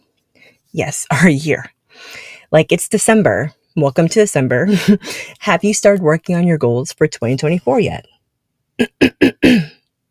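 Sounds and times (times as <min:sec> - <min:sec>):
speech: 0:00.5 - 0:08.1
person clearing throat deliberately: 0:08.8 - 0:09.8.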